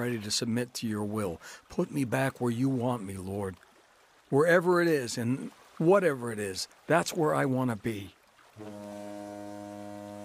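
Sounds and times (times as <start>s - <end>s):
speech: 0.0s - 3.7s, 4.3s - 9.2s
deep steady foghorn blast across a lake in fog: 8.6s - 10.2s.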